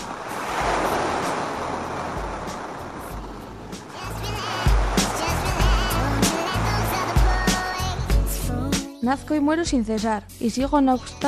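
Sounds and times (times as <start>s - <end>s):
sea waves breaking on shore: 0.0s - 8.5s
speech: 9.1s - 11.2s.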